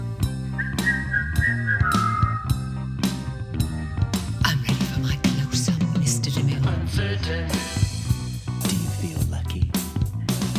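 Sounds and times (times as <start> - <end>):
backing track with drum hits and low bass: 0.0 - 10.5
person whistling: 0.6 - 2.6.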